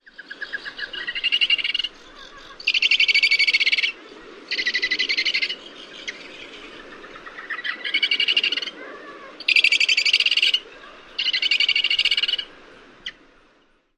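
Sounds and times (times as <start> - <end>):
Parakeet Auklet hoarse chittering: 0.4 - 6.3, 7.3 - 8.8, 9.4 - 10.6, 11.2 - 13.2.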